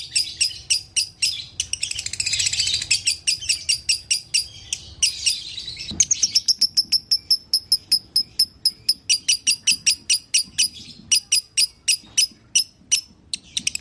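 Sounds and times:
canary tutor song of clipped high-pitched notes: 0.0s - 13.7s.

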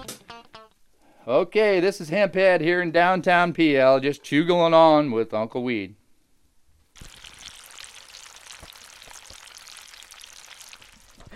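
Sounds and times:
speech: 1.2s - 6.0s
bacon sizzling in a pan: 7.0s - 11.3s.

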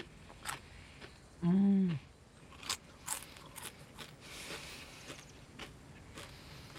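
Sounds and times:
crunchy potato chips eaten from an open bag in a car: 2.5s - 6.7s.

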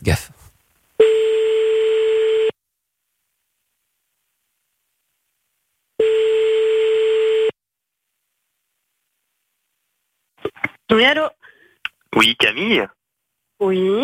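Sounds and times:
telephone ringback tone of a call being placed: 1.0s - 2.6s, 6.0s - 7.6s
speech: 11.0s - 11.4s, 12.1s - 13.0s, 13.6s - 14.0s.

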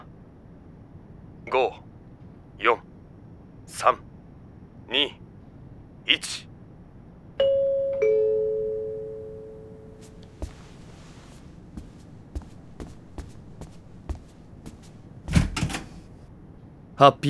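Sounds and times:
speech: 1.5s - 1.9s, 2.6s - 2.9s, 3.7s - 4.1s, 4.9s - 5.2s, 6.1s - 6.5s, 17.0s - 17.2s
two-tone doorbell chime: 7.4s - 9.8s
soft footsteps: 9.8s - 16.3s
front door opening at night: 10.0s - 16.3s
loud clatter: 10.2s - 16.2s.

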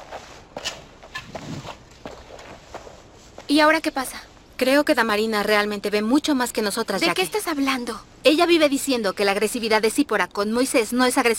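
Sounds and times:
footsteps of someone walking away: 0.0s - 3.6s
speech: 3.5s - 11.3s.

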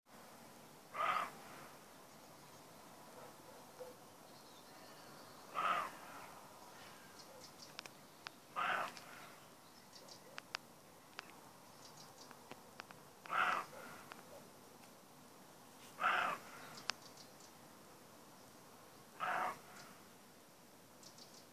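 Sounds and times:
faint clicks and ticks: 7.6s - 9.1s, 10.2s - 11.4s, 12.2s - 13.4s, 16.8s - 17.1s
young male roe deer barking in a meadow in France: 8.6s - 8.9s, 13.3s - 14.0s, 16.0s - 16.4s, 19.2s - 19.6s.

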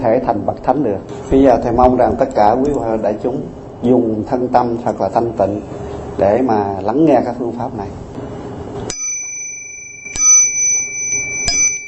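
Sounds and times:
speech: 0.0s - 8.0s
small bell struck during a Buddhist teaching: 8.9s - 11.8s.

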